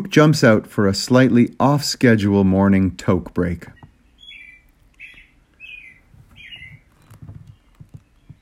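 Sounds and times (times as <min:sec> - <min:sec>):
speech: 0:00.0 - 0:03.8
faint outdoor noise: 0:00.0 - 0:08.4
small bird on a mini-trailer cheeping: 0:03.8 - 0:08.4.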